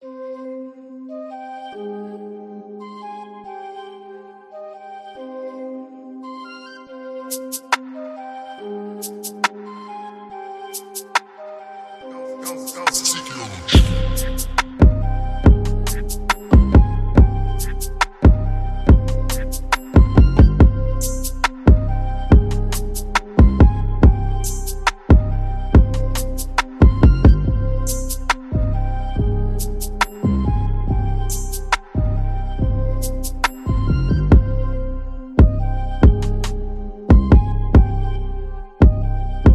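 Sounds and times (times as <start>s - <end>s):
tribal music at 140 bpm in C minor: 12.4s - 39.5s.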